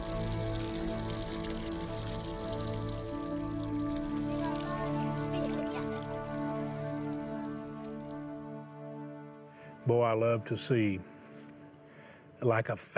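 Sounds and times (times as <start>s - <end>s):
small stream of clean water trickling and splashing: 0.0s - 8.7s
humming musical drone: 0.0s - 11.0s
speech: 9.9s - 11.2s, 12.4s - 12.9s.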